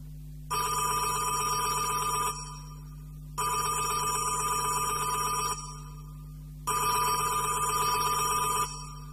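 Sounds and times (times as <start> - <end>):
telephone bell ringing in a monastery in Old Cairo: 0.5 - 2.8, 3.4 - 6.0, 6.7 - 9.1.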